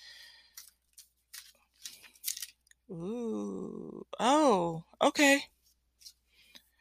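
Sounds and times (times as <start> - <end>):
deck of cards being shuffled: 0.5 - 2.6
speech: 2.9 - 5.5.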